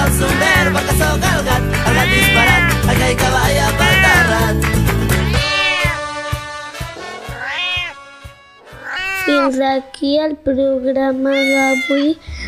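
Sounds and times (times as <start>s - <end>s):
pair of European wildcats yowling and caterwauling at a zoo: 0.1s - 6.2s, 7.0s - 8.0s, 8.6s - 9.5s
speech: 9.5s - 12.3s.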